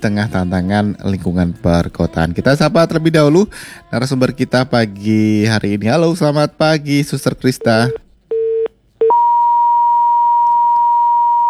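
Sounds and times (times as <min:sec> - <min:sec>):
speech: 0:00.0 - 0:08.0
telephone line beeps after a dropped call: 0:07.6 - 0:11.4.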